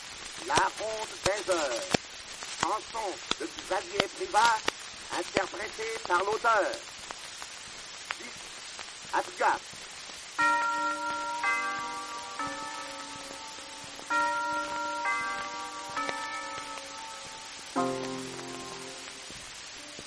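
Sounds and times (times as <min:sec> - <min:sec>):
speech: 0:00.4 - 0:02.0, 0:02.6 - 0:06.9, 0:09.1 - 0:09.7
carillon bells chiming an old tune: 0:10.4 - 0:18.9.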